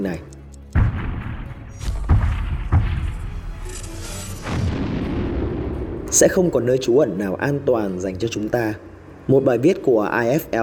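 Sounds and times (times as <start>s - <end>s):
speech: 0.0s - 0.4s, 6.1s - 10.6s
heavy bomb explosions: 0.8s - 3.7s, 4.4s - 6.6s.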